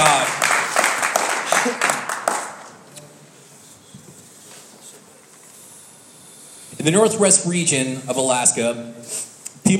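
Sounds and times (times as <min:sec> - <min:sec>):
seated church audience clapping in praise: 0:00.0 - 0:02.8
speech: 0:06.8 - 0:09.7.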